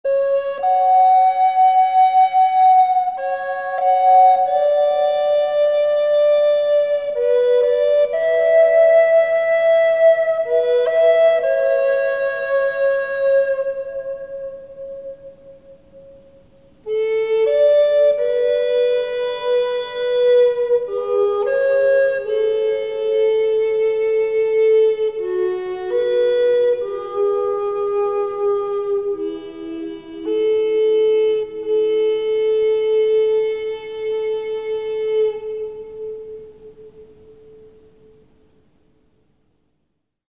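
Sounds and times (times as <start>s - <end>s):
healing flute music for therapy: 0.0s - 38.2s.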